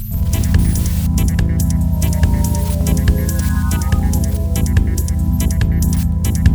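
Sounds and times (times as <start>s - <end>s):
reggae backbeat soundcheck: 0.2s - 6.5s.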